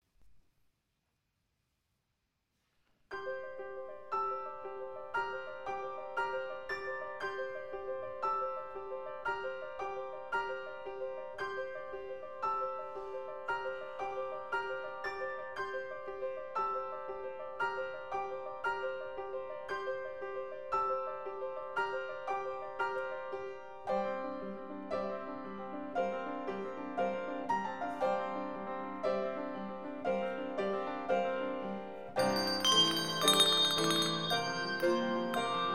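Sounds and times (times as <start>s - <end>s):
piano: 3.0s - 35.7s
bells: 32.2s - 35.7s.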